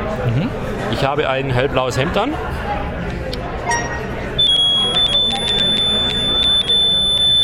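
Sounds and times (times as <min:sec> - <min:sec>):
speech: 0:00.3 - 0:03.0
steady high-pitched electronic tone from a handheld color detector: 0:03.6 - 0:07.4.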